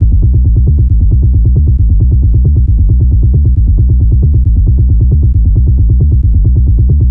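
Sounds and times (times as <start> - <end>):
techno bass loop in D at 135 BPM: 0.0 - 7.0.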